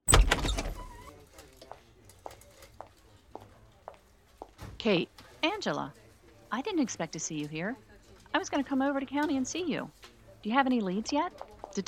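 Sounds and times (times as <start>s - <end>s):
door opening with a loud clunk and rattle: 0.0s - 1.0s
faint footsteps or clicks moving off: 1.1s - 5.4s
speech: 4.8s - 11.8s.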